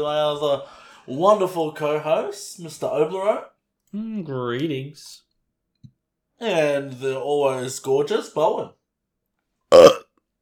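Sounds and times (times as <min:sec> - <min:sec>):
speech: 0:00.0 - 0:05.2, 0:06.4 - 0:08.8
short loud throaty burp: 0:09.7 - 0:10.1.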